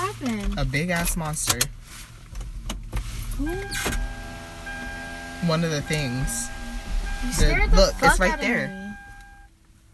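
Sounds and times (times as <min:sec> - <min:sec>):
car engine idling: 0:00.0 - 0:09.9
speech: 0:00.2 - 0:02.1, 0:03.4 - 0:04.1, 0:05.4 - 0:06.6, 0:07.2 - 0:08.8
car power window motor whirring upward and shutting: 0:03.3 - 0:09.4.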